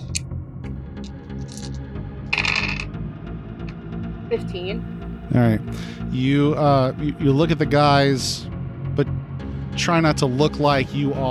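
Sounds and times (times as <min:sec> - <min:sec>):
dice clattering across a hard tabletop: 0:01.4 - 0:01.8, 0:02.4 - 0:02.9
speech: 0:04.3 - 0:09.2, 0:09.8 - 0:11.2.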